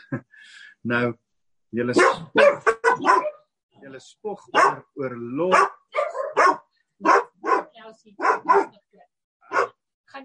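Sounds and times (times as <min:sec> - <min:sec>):
laughter: 0:00.0 - 0:00.3
speech: 0:00.0 - 0:05.8, 0:07.0 - 0:07.2, 0:07.8 - 0:10.2
dog barking: 0:02.0 - 0:03.5, 0:04.5 - 0:04.9, 0:05.5 - 0:08.8, 0:09.4 - 0:09.8.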